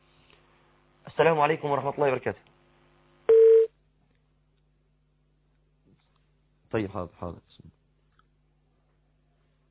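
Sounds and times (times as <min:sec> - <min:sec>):
speech: 0:01.2 - 0:02.6, 0:06.7 - 0:07.8
short telephone beep of a caller's line connecting: 0:03.3 - 0:03.7.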